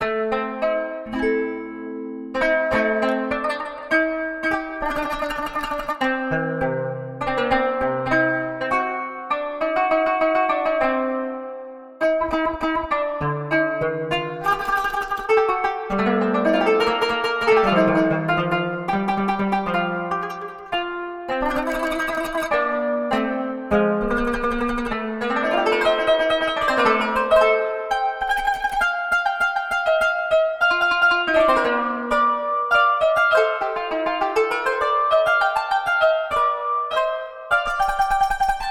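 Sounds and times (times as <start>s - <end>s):
qanun playing Arabic maqams: 0.0s - 38.7s.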